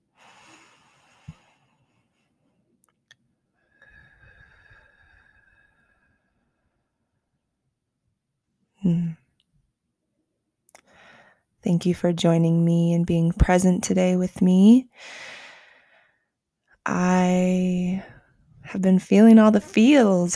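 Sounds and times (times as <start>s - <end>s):
deep breath in and out during a guided breathing meditation: 0.1s - 2.0s, 3.5s - 7.0s, 10.8s - 11.5s, 14.9s - 16.4s
speech: 8.8s - 9.2s, 11.6s - 15.3s, 16.8s - 18.1s, 18.7s - 20.3s.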